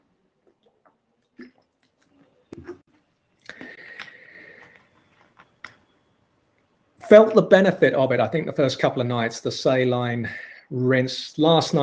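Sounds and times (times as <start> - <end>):
person gulping and swallowing water: 0.4 - 4.0
small mouth clicks: 0.5 - 5.9
speech: 7.1 - 11.8.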